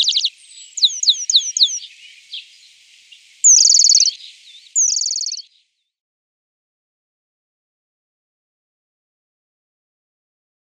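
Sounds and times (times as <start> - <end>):
Eurasian penduline tit singing high downslurred notes and rattling trills: 0.0 - 5.8.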